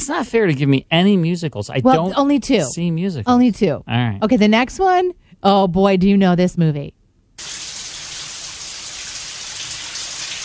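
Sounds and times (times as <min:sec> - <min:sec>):
speech: 0:00.0 - 0:07.6
shower water spraying down in a film scene: 0:07.4 - 0:10.4.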